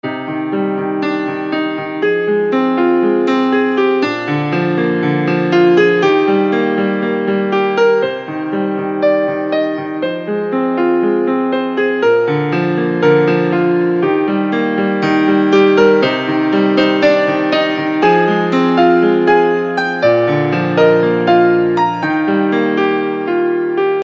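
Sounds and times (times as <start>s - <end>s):
piano ringtone: 0.0s - 24.0s.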